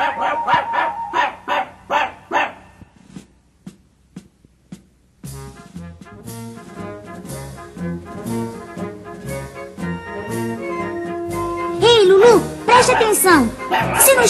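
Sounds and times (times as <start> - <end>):
small dog yapping out-of-tune barks: 0.0 - 2.7, 12.8 - 14.2
instrumental music: 3.7 - 14.2
speech: 12.9 - 14.2.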